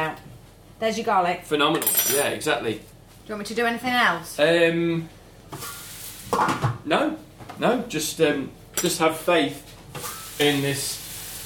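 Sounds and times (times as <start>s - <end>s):
speech: 0.8s - 5.7s, 6.4s - 11.0s
leeks sizzling as they fry in a hot pan: 10.1s - 11.4s.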